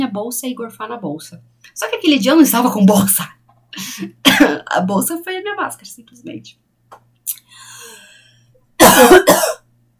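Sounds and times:
speech: 0:00.0 - 0:06.6
short gasp: 0:07.5 - 0:08.4
choking cough: 0:08.8 - 0:09.6.

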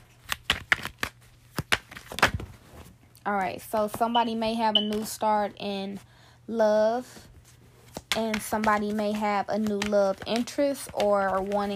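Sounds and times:
tarot cards being shuffled and handled: 0:00.0 - 0:03.0, 0:07.4 - 0:11.7
speech: 0:03.2 - 0:07.3, 0:08.2 - 0:11.7.

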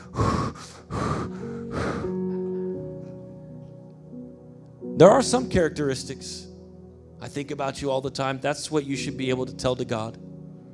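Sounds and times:
person imitating heavy breathing on the phone: 0:00.0 - 0:02.3
speech: 0:05.0 - 0:06.5, 0:07.2 - 0:10.2.

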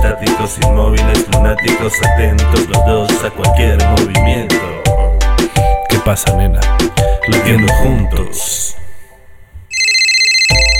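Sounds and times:
speech: 0:00.2 - 0:04.9, 0:06.1 - 0:08.8
mobile phone ringtone with bright electronic melody: 0:07.3 - 0:08.0, 0:09.7 - 0:10.7.

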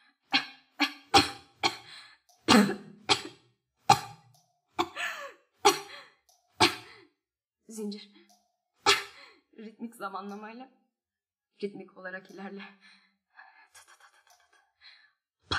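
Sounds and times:
dry coughing fit: 0:00.8 - 0:01.9, 0:02.5 - 0:04.2, 0:04.8 - 0:07.1, 0:08.9 - 0:09.2
speech: 0:02.6 - 0:02.8, 0:07.8 - 0:08.2, 0:09.6 - 0:10.8, 0:11.6 - 0:13.0.

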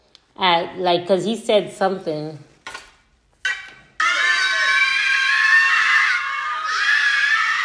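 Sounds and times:
speech: 0:00.4 - 0:02.5
loud high-pitched screaming in a played video clip: 0:03.6 - 0:07.6.

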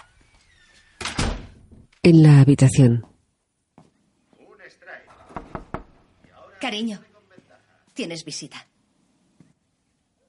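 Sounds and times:
door closing: 0:00.4 - 0:02.0, 0:05.1 - 0:06.0
door thump: 0:01.0 - 0:01.9, 0:05.2 - 0:06.0
speech: 0:02.0 - 0:03.1, 0:06.7 - 0:07.1, 0:08.0 - 0:08.7.

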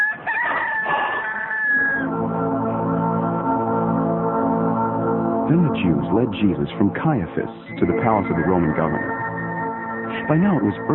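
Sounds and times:
rooster crowing: 0:00.0 - 0:02.2
sustained low musical drone: 0:02.0 - 0:10.9
speech: 0:05.5 - 0:09.3, 0:10.3 - 0:10.9.

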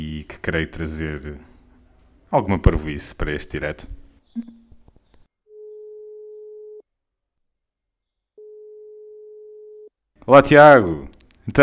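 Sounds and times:
speech: 0:00.4 - 0:01.5, 0:02.3 - 0:04.6, 0:10.3 - 0:11.6
phone ringing tone of an outgoing call: 0:05.5 - 0:06.8, 0:08.4 - 0:09.9.

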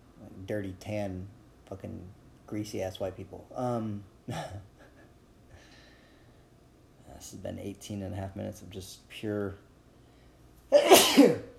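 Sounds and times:
speech: 0:00.5 - 0:04.7, 0:07.2 - 0:09.7
person sneezing: 0:10.7 - 0:11.5.

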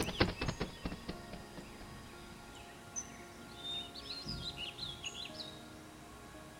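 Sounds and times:
sharp clicking taps: 0:00.0 - 0:02.0
birds chirping and singing softly: 0:00.0 - 0:06.5.

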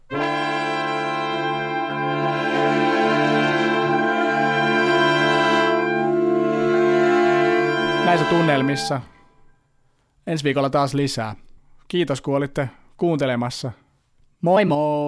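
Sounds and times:
software sampler instrument playing sustained electronic chords: 0:00.1 - 0:09.0
speech: 0:08.3 - 0:09.2, 0:10.3 - 0:13.8, 0:14.4 - 0:15.0.

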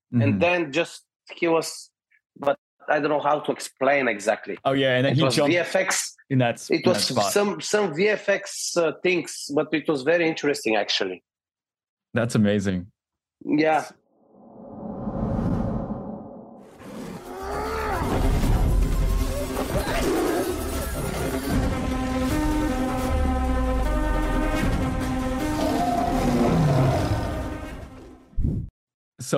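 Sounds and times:
speech: 0:00.1 - 0:11.3, 0:12.1 - 0:14.0
whooshing rushes: 0:14.3 - 0:16.7
tigers roaring and snarling in a film fight scene: 0:16.6 - 0:21.7, 0:25.3 - 0:28.1
dense sustained musical film score: 0:17.2 - 0:28.2.

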